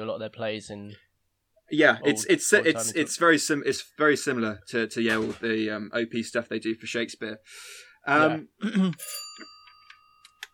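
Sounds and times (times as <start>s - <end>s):
speech: 0.0s - 1.1s, 1.7s - 9.5s
doorbell ringing: 9.0s - 10.5s.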